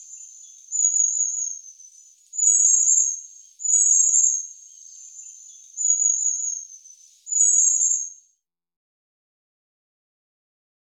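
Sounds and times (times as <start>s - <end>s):
long-tailed tit calls: 0.0s - 8.2s.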